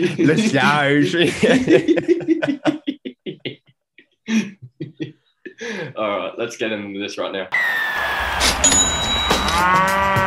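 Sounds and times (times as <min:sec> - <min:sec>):
speech: 0:00.0 - 0:02.8, 0:06.0 - 0:09.0, 0:09.6 - 0:10.2
laughter: 0:00.0 - 0:03.7, 0:04.3 - 0:05.6
cow mooing: 0:09.4 - 0:10.2.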